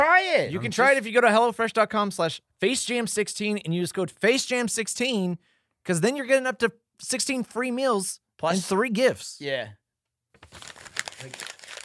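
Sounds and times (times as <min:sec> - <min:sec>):
speech: 0:00.2 - 0:09.8, 0:10.4 - 0:11.5
paper crumpling: 0:10.4 - 0:11.8.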